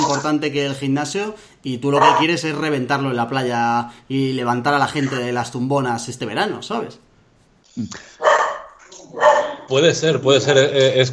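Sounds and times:
speech: 0:00.2 - 0:07.1, 0:07.8 - 0:08.2, 0:09.1 - 0:11.1
dog barking: 0:02.0 - 0:02.3, 0:08.2 - 0:09.7.

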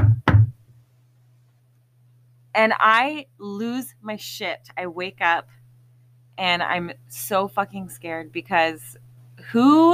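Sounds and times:
heavy knocks on a trailer door in the woods: 0:00.0 - 0:00.6
speech: 0:02.6 - 0:05.6, 0:06.4 - 0:09.9.

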